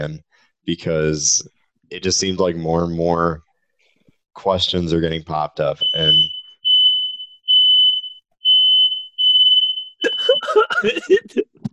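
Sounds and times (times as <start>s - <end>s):
speech: 0.0s - 3.5s, 4.4s - 6.4s, 10.6s - 11.5s
smoke alarm beeping in shrill tones: 5.8s - 10.6s
people laughing: 10.0s - 11.6s.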